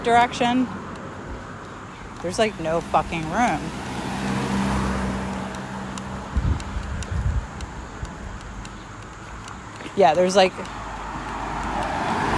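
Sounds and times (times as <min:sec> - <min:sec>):
speech: 0:00.0 - 0:00.8, 0:02.2 - 0:03.9, 0:10.0 - 0:10.8
steady road noise from traffic on a road with no sidewalk: 0:00.0 - 0:12.3
car rumbling past: 0:03.6 - 0:06.6, 0:11.0 - 0:12.3
wind buffeting the microphone on a windy day: 0:06.0 - 0:09.0.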